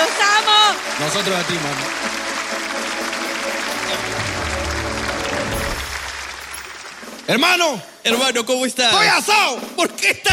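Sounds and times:
studio audience applause: 0.0 - 7.8
speech: 1.0 - 2.2, 3.9 - 4.6, 7.3 - 10.3.

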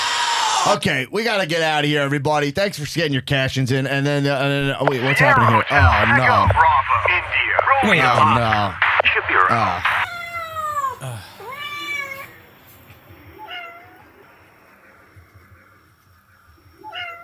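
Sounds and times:
speech: 0.6 - 10.0
cat meowing and caterwauling: 10.0 - 12.3, 16.8 - 17.2.

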